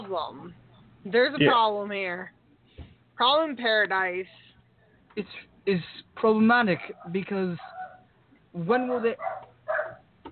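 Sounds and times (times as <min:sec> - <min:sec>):
speech: 0:00.1 - 0:02.4, 0:03.2 - 0:04.5, 0:05.2 - 0:07.8, 0:08.5 - 0:09.5
dogs barking: 0:06.9 - 0:08.1, 0:08.8 - 0:10.1
dog yipping: 0:07.0 - 0:08.0, 0:08.9 - 0:10.0.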